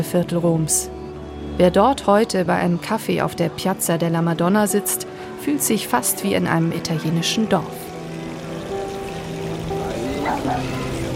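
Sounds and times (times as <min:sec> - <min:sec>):
speech: 0:00.0 - 0:01.0, 0:01.6 - 0:07.9
fountain water splashing and trickling: 0:07.0 - 0:11.1
faint murmuring voices: 0:09.5 - 0:11.1.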